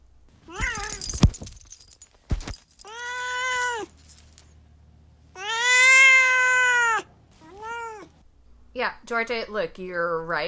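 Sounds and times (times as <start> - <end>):
pet cat meowing: 0.5 - 1.0, 5.4 - 8.1
clattering: 0.6 - 3.3
speech: 9.1 - 10.4.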